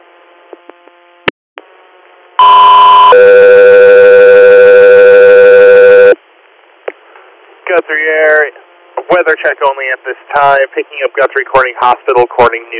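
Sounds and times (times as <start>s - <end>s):
radio dispatch alert tones for an air ambulance call: 2.4s - 6.2s
speech: 9.3s - 12.7s.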